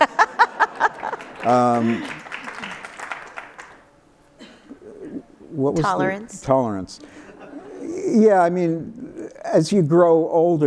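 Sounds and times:
laughter: 0.0s - 3.4s, 7.0s - 8.4s
audience clapping: 0.0s - 3.9s
sharp evenly spaced claps: 0.8s - 3.8s
speech: 1.4s - 2.2s, 5.6s - 7.2s, 8.1s - 10.6s.

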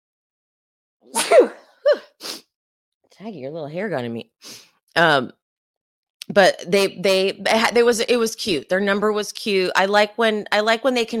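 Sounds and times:
speech: 1.0s - 1.6s, 3.2s - 5.4s, 6.3s - 11.1s
person sneezing: 1.1s - 2.5s.

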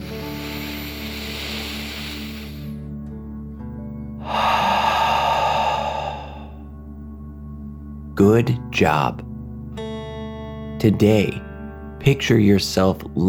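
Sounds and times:
deep breath in and out through the mouth: 0.0s - 3.0s, 4.1s - 6.8s
speech: 8.2s - 9.3s, 10.8s - 13.2s.

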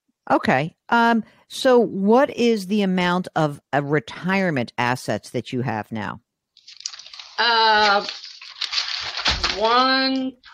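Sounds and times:
speech: 0.3s - 6.8s, 7.4s - 8.3s, 9.6s - 10.5s
papers rustling and shuffling: 6.6s - 10.5s.

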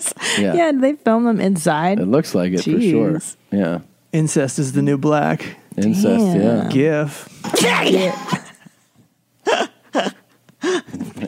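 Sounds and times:
speech: 0.3s - 8.4s
person sneezing: 7.4s - 8.4s.

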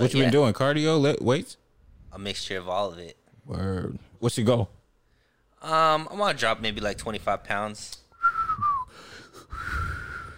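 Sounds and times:
speech: 0.0s - 4.8s, 5.6s - 8.0s
weak breathy whistle attempt by a person: 8.1s - 10.3s.

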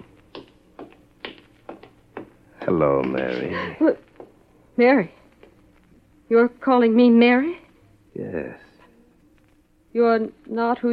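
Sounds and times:
high heels clicking on a hard floor: 0.0s - 3.5s, 4.1s - 4.4s
speech: 2.6s - 4.1s, 4.8s - 5.2s, 6.3s - 7.6s, 8.2s - 8.6s, 10.0s - 10.9s.

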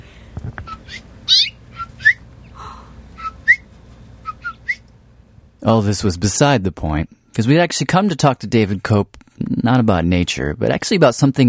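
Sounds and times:
mother bird chirping and whistling at her nest: 0.6s - 2.2s, 3.2s - 4.8s
speech: 5.6s - 11.4s.

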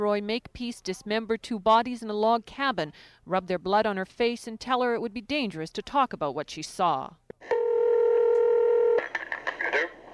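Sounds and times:
speech: 0.0s - 7.2s
steady telephone tone: 7.5s - 9.0s.

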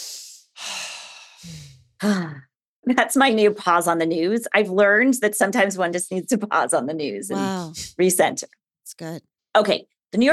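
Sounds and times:
deep breathing taken as a calming pause: 0.0s - 2.0s
speech: 1.4s - 10.3s.

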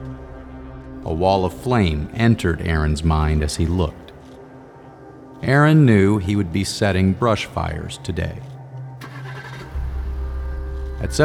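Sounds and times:
speech: 1.0s - 4.0s, 5.4s - 8.5s, 11.0s - 11.2s
car engine cranking and starting: 6.7s - 11.2s.

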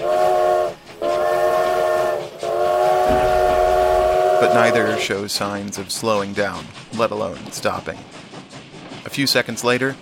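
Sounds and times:
steam train whistles blowing: 0.0s - 5.2s
speech: 4.4s - 8.2s, 9.1s - 10.0s.

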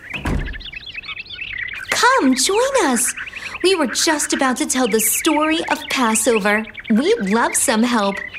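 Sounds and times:
cottage door swinging open with thump and rattle: 0.0s - 0.9s
several small birds chirping and tweeting: 0.0s - 8.3s
speech: 2.1s - 8.3s.

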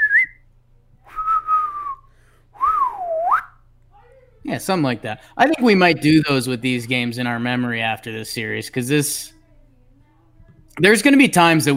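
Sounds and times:
person whistling lively phrases: 0.0s - 0.4s, 1.1s - 3.6s
speech: 4.5s - 9.4s, 10.8s - 11.7s.

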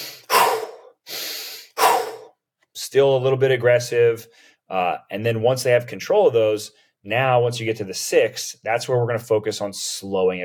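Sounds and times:
intense fire breaths in a forceful breathing exercise: 0.0s - 2.3s
speech: 2.8s - 10.4s.

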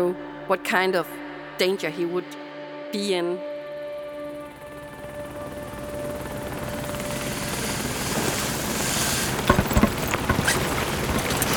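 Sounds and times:
speech: 0.0s - 3.5s
helicopter rotor chopping: 4.2s - 11.5s
rattling: 6.1s - 11.5s.

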